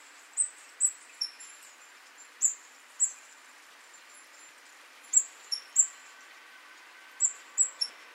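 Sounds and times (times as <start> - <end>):
faint background noise: 0.0 - 8.1
great tit Parus major calls: 0.4 - 3.3, 5.0 - 6.0, 7.2 - 7.9.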